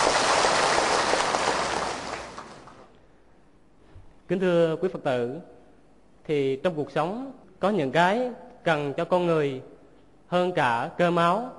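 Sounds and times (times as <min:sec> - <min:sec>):
audience applause: 0:00.0 - 0:02.9
speech: 0:04.3 - 0:05.6, 0:06.3 - 0:09.7, 0:10.3 - 0:11.5.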